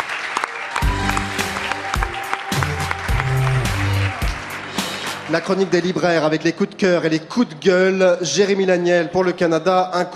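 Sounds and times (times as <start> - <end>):
crowd applause: 0.0 - 6.2
speech: 5.3 - 10.1.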